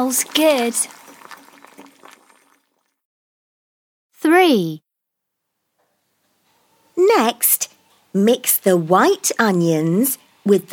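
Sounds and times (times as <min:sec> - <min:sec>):
speech: 0:00.0 - 0:01.0, 0:04.2 - 0:04.8, 0:07.0 - 0:10.7
water bubbling in a saucepan: 0:00.0 - 0:03.0.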